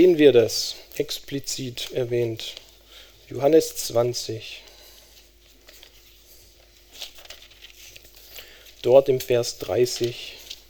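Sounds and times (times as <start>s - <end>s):
speech: 0.0s - 2.7s, 3.3s - 4.6s, 8.8s - 10.4s
book pages being flipped through: 4.9s - 10.6s.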